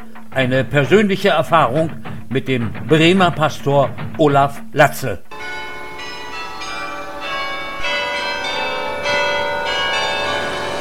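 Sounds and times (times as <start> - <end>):
speech: 0.0 - 5.3
church tower bells ringing: 5.3 - 10.8.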